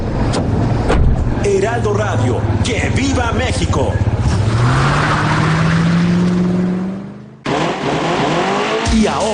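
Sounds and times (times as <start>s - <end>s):
road rumble: 0.0s - 9.3s
taxi engine revving as it accelerates away: 0.1s - 9.3s
speech: 1.7s - 5.0s.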